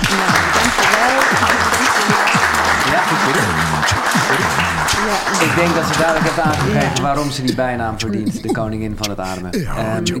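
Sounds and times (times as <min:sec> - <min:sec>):
audience applause at a live talk: 0:00.0 - 0:07.3
laughter: 0:00.0 - 0:10.1
speech: 0:05.6 - 0:10.1.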